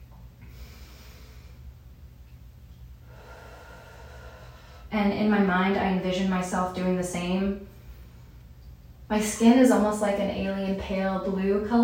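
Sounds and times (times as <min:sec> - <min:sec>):
steady low hum: 0:00.0 - 0:11.8
person relaxing in a bath taking slow deep breaths: 0:00.4 - 0:01.7, 0:03.0 - 0:04.9
speech: 0:04.9 - 0:07.7, 0:09.1 - 0:11.8.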